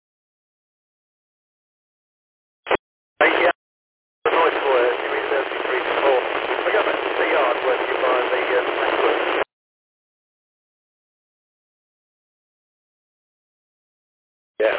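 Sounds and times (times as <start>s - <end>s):
radio static hiss: 2.7s - 3.6s, 4.3s - 9.5s.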